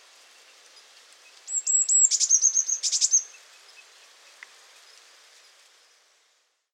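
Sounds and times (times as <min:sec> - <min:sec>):
faint background hiss: 0:00.0 - 0:06.7
Eurasian blue tit Cyanistes caeruleus thin high whistled notes: 0:01.5 - 0:03.3.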